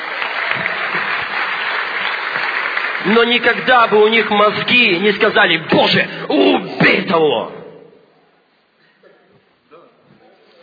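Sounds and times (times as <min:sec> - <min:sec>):
large crowd applauding: 0:00.0 - 0:05.0
speech: 0:03.0 - 0:07.6.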